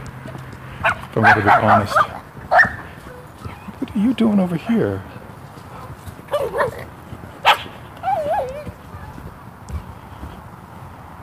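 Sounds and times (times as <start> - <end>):
dog barking: 0.8 - 3.8, 5.1 - 8.8
speech: 1.2 - 2.7, 4.0 - 5.1.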